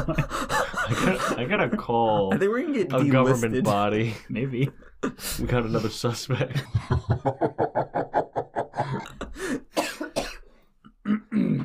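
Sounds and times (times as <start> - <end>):
speech: 0.0 - 0.4, 1.0 - 9.6
laughter: 0.0 - 9.4
person coughing: 8.9 - 11.6
throat clearing: 11.0 - 11.6.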